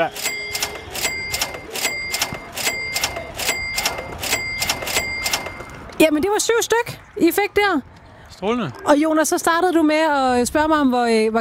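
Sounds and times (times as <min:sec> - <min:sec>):
speech: 0:00.0 - 0:00.3, 0:06.0 - 0:11.3
cash register ringing up coins with mechanical clacks and bell chimes: 0:00.0 - 0:05.9.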